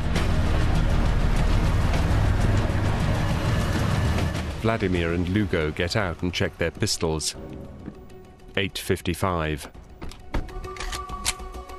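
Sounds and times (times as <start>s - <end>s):
car engine rumbling as car pulls into a rear yard near a river: 0.0s - 8.6s
speech: 4.6s - 7.6s, 8.6s - 9.8s.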